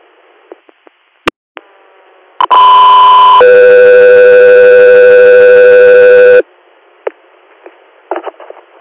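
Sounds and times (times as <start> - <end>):
two-tone radio dispatch alert tone for an air medical unit: 2.4 - 6.4.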